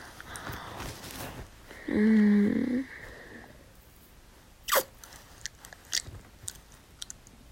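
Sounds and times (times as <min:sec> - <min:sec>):
speech: 0:01.9 - 0:02.3
gum chewing: 0:05.4 - 0:07.3.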